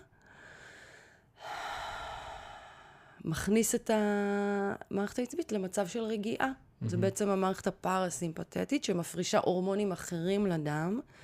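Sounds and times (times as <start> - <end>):
slow deep breath: 0.2 - 3.2, 11.1 - 11.2
speech: 3.2 - 11.2.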